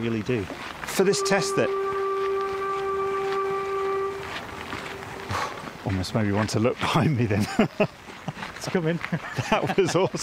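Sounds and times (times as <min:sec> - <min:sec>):
speech: 0:00.0 - 0:01.9, 0:05.9 - 0:10.2
open outdoor ambience: 0:00.0 - 0:10.2
train whistle hoot along a disused railway line: 0:00.9 - 0:05.7
laughter: 0:07.3 - 0:08.0, 0:09.1 - 0:10.2.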